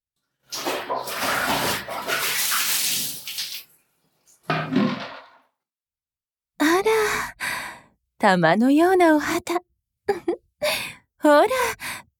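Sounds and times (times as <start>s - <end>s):
hot water poured to rinse soap suds off a body: 0.3s - 5.1s
speech: 8.2s - 11.8s.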